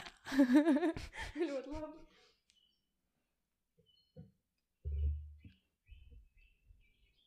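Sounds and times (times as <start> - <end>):
speech: 0.4 - 2.1
birdsong of short high chirps and tweets: 2.2 - 7.2
low thumps: 4.9 - 5.5.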